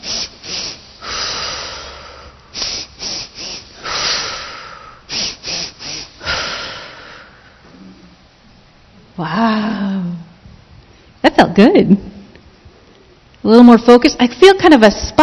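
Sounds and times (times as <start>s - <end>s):
rapid sharp nasal sniffs in a bunny-breath breathing exercise: 0.0s - 6.9s
longer airy exhale in a breathing exercise: 0.0s - 7.6s
speech: 9.2s - 9.9s, 11.4s - 12.1s, 13.5s - 15.2s.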